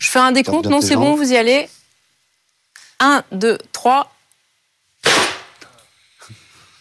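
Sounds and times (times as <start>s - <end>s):
speech: 0.0s - 1.8s, 3.0s - 4.2s
motorcycle airbag trousers deploying with a pop and gas hiss: 5.0s - 5.5s.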